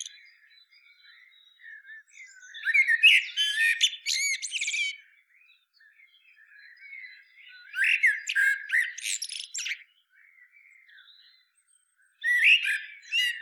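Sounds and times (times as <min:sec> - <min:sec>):
Common blackbird Turdus merula singing: 0:00.0 - 0:13.3.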